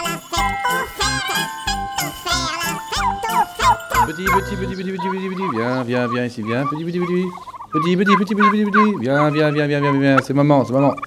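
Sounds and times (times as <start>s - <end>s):
turkey drawn-out wavering calls: 0.0s - 11.0s
turkey gobbling: 2.9s - 11.0s
speech: 4.2s - 11.0s.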